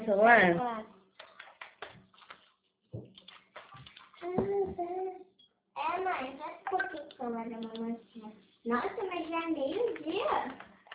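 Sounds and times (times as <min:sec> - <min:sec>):
speech: 0:00.1 - 0:00.9, 0:05.8 - 0:10.7
water poured into a small toy bathtub: 0:01.2 - 0:04.3
child's voice: 0:04.2 - 0:10.6.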